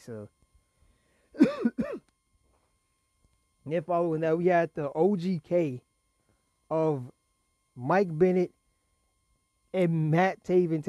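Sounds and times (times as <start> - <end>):
speech: 0.0 - 0.4, 3.7 - 5.9, 6.7 - 7.2, 7.8 - 8.6, 9.7 - 10.8
person coughing harshly: 1.4 - 2.0.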